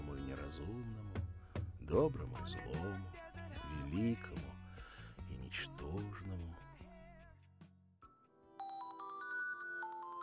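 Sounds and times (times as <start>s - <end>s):
speech: 0.5s - 1.2s, 1.9s - 4.6s, 5.4s - 6.7s
mobile phone ringing with electronic melody: 8.6s - 10.2s.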